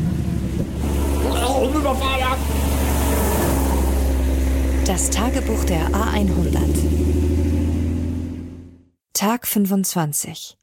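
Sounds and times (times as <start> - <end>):
steady loud rumble of road traffic: 0.0 - 8.9
brief higher tonal sweeps: 0.8 - 7.9
speech: 4.9 - 7.8, 9.2 - 10.6.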